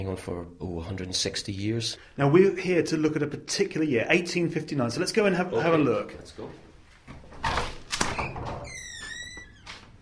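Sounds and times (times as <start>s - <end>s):
speech: 0.0s - 6.6s
creaky door opening and shutting: 7.2s - 9.9s.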